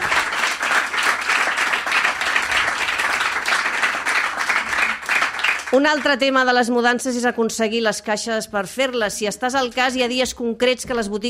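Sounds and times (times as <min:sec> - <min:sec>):
audience applause: 0:00.0 - 0:06.2
speech: 0:05.7 - 0:11.2.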